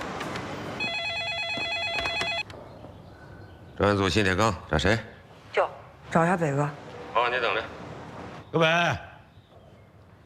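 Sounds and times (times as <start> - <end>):
telephone ringing with a fast warbling electronic trill: 0.8 - 2.5
speech: 3.8 - 7.8, 8.5 - 9.1.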